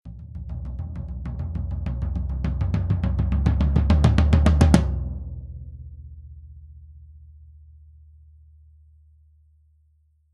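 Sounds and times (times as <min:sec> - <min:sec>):
tom drum roll: 0:00.1 - 0:05.7.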